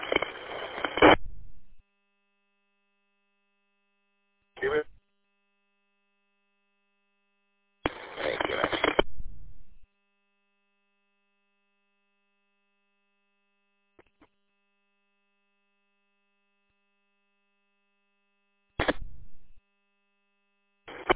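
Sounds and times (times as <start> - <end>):
brief chirp over a radio: 0.0 - 1.8, 4.6 - 4.9, 7.9 - 9.8, 18.8 - 19.6, 20.9 - 21.1
buzzy beep-like signal over a radio: 0.0 - 1.8, 7.9 - 9.8, 20.9 - 21.1.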